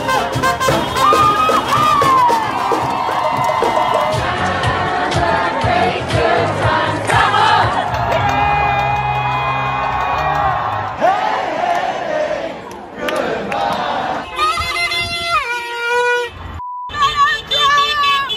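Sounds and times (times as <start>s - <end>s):
car horns honking: 0.0s - 2.9s, 14.2s - 18.3s
dense crowd at a street celebration: 0.4s - 14.7s.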